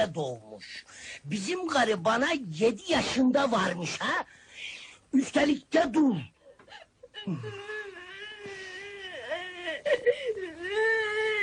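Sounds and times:
speech: 0.0s - 6.4s, 7.2s - 7.8s, 9.8s - 11.0s
child crying: 7.1s - 11.4s.

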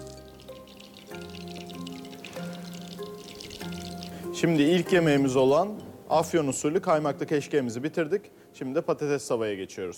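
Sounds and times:
hot melted butter with chili pepper trickling and spattering over a cooked dish: 0.0s - 4.3s
faint steady music: 0.0s - 9.9s
speech: 4.4s - 9.9s.

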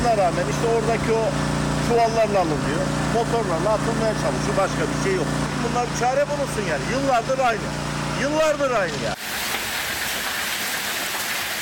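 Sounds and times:
speech: 0.1s - 9.3s
heavy rain and hail in a storm over Tekirdağ and Kırklareli: 9.2s - 11.5s.

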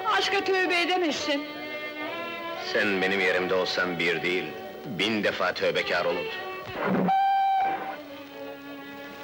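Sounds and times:
speech: 0.2s - 1.6s, 2.7s - 7.2s
train whistle hooting as the train sets off: 7.0s - 8.0s.

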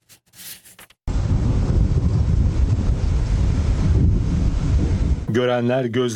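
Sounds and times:
wind from a giant tornado in France buffeting the microphone: 1.1s - 5.8s
speech: 5.4s - 6.1s.

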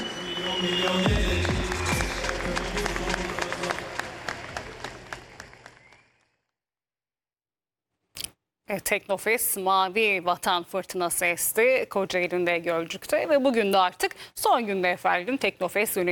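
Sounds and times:
crowd applause welcoming a naval commander at a technology festival: 0.0s - 6.4s
speech: 0.6s - 1.7s, 8.8s - 16.1s.

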